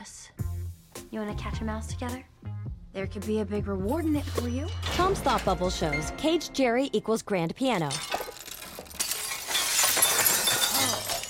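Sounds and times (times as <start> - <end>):
speech: 1.1 - 8.1
tinkling spray of broken window glass shards: 4.1 - 6.0, 7.8 - 11.2
window glass shattering in a hotel room in an animated cartoon: 4.1 - 6.1, 7.8 - 11.2.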